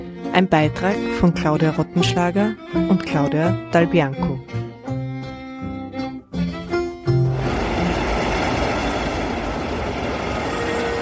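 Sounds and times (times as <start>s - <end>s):
speech: 0.4s - 4.4s
train rumbling and hissing as it pulls into a railway station: 6.6s - 11.0s.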